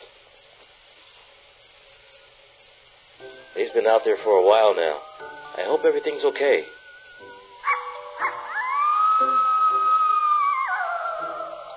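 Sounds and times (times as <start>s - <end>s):
speech: 3.6s - 6.8s
coyote yelping and howling: 5.8s - 11.7s.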